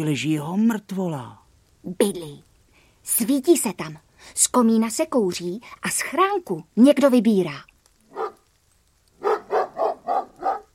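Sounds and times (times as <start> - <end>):
speech: 0.0 - 7.7
dog barking: 8.1 - 8.4, 9.2 - 10.7.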